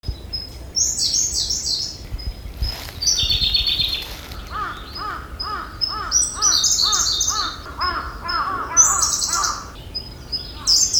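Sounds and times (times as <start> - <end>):
Siberian blue robin singing a shrill high trill: 0.1 - 10.9
harsh cawing calls: 4.0 - 9.8.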